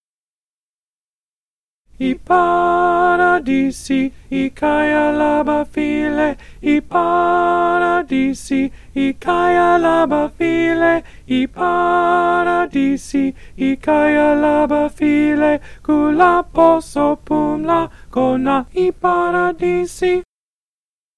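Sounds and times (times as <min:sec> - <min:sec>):
alto voice singing: 0:01.9 - 0:20.3.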